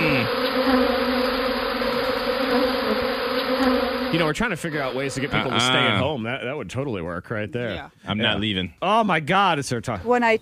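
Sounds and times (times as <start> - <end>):
dense swarm of bees buzzing on a house front porch: 0.0 - 6.1
speech: 4.1 - 10.3.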